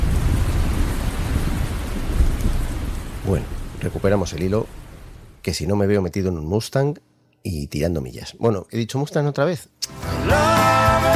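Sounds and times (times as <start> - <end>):
steady heavy rain pouring: 0.0 - 5.4
speech: 3.3 - 4.8, 5.4 - 11.1.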